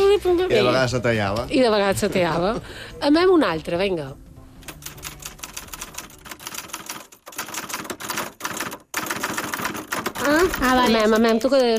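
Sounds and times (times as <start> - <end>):
speech: 0.2 - 4.2, 10.4 - 11.7
mechanical typewriter typing: 4.6 - 11.7.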